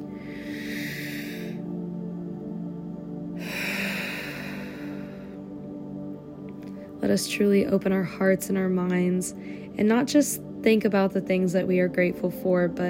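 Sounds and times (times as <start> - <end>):
deep breath in and out: 0.0 - 7.0, 9.3 - 9.8
soft steady tonal drone: 0.0 - 12.8
speech: 7.0 - 12.8.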